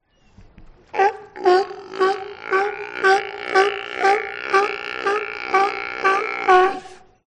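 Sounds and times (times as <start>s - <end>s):
sea lion: 0.8s - 7.2s.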